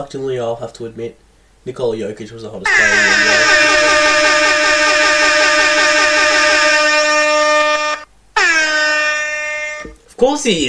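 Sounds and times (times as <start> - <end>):
speech: 0.0 - 4.3, 10.2 - 10.6
loud blaring air horn blasting: 2.7 - 10.0.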